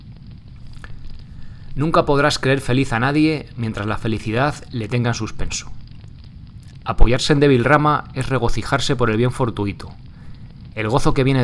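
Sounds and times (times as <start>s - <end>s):
bonfire being lit crackling with pops and snaps: 0.0s - 11.4s
low rumbling roar of bonfire flames: 0.0s - 11.4s
speech: 1.8s - 5.8s, 6.9s - 10.0s, 10.8s - 11.4s.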